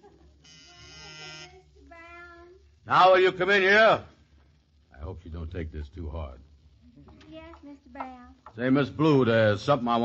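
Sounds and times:
office intercom buzzer: 0.4 - 1.7
speech: 2.9 - 4.1, 5.6 - 6.4, 7.6 - 10.0.

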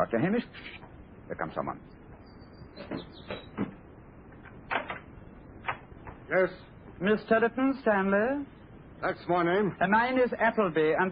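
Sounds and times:
speech: 0.0 - 2.0, 2.8 - 3.7, 6.3 - 11.1
door being opened with sharp clicks: 4.4 - 6.2.

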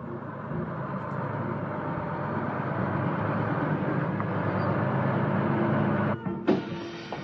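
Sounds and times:
bus engine rumbling while pulling in: 0.0 - 7.2
road noise: 0.0 - 7.2
bus air brakes hissing as it halts: 6.5 - 7.2.

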